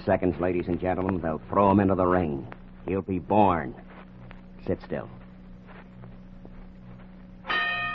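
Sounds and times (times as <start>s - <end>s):
speech: 0.0s - 3.9s, 4.6s - 5.2s
steady low hum: 0.0s - 7.9s
boxing ring bell ringing to start a fight: 7.5s - 7.9s.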